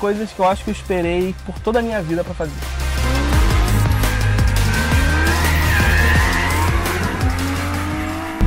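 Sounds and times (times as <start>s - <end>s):
speech: 0.0s - 2.8s
Lamborghini Huracán sports car engine revving on a racetrack: 2.5s - 8.4s
Lamborghini Huracán tires squealing on a racetrack: 2.5s - 8.4s.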